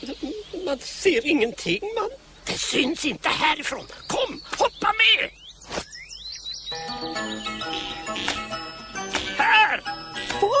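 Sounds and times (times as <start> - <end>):
speech: 0.0 - 5.8
parrot calling: 6.9 - 10.2.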